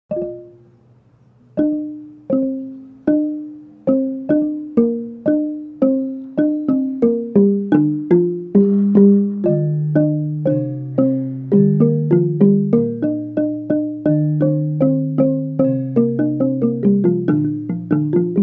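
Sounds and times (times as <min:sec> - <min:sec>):
gambang playing a Javanese melody: 0:00.1 - 0:18.4.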